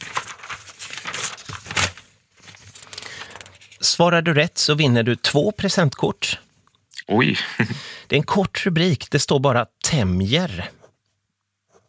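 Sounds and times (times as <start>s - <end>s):
dry paper pages being flipped through: 0.0s - 3.8s
speech: 3.8s - 6.4s, 7.1s - 10.8s.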